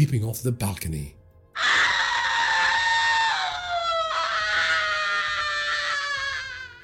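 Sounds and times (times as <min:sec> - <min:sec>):
speech: 0:00.0 - 0:01.2
woman screaming: 0:01.6 - 0:06.8.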